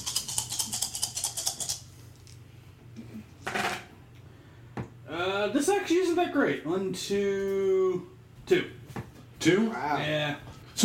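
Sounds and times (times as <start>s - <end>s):
handful of dice rattling and clattering: 0.0s - 2.4s
speech: 5.2s - 8.8s, 9.4s - 10.8s.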